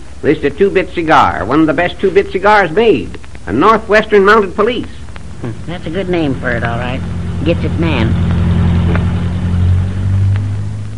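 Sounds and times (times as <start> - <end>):
speech: 0.2 - 8.3
car engine droning as the car drives past: 5.7 - 10.9.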